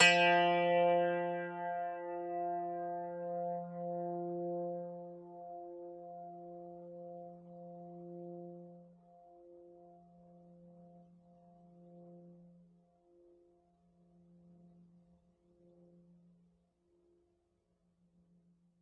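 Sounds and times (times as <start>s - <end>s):
zither: 0.0s - 6.3s.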